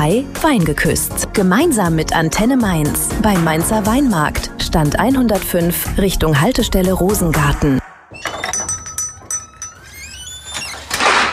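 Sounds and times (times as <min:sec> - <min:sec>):
speech: 0:00.0 - 0:07.8
metal utensils clinking inside a kitchen drawer: 0:08.3 - 0:09.9
kitchen drawer sliding open with a scraping rattle: 0:10.4 - 0:11.3.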